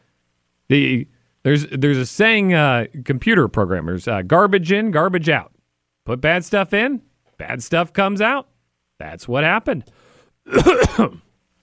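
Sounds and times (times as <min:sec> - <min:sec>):
speech: 0:00.7 - 0:05.5, 0:06.1 - 0:11.2
person coughing: 0:10.5 - 0:11.3.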